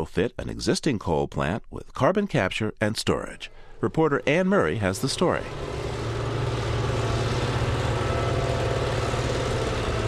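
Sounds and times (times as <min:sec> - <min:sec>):
speech: 0:00.0 - 0:05.9
heavy diesel trucks hauling coal at a power plant: 0:03.3 - 0:10.0.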